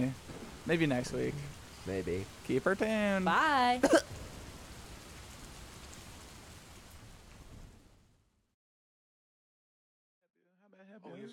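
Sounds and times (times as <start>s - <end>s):
speech: 0.0s - 4.2s
low rumbling texture of storm: 0.0s - 8.0s
stormy rain sound effect: 0.0s - 8.2s.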